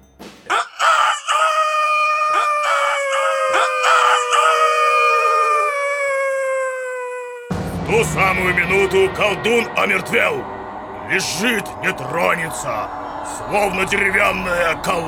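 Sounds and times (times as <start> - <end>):
rooster crowing: 0.5 - 7.5
speech: 8.1 - 15.0.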